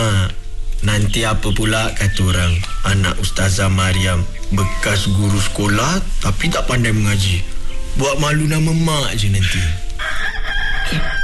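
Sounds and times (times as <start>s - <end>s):
speech: 0.9s - 9.8s, 10.9s - 11.2s
rooster crowing: 10.0s - 11.2s.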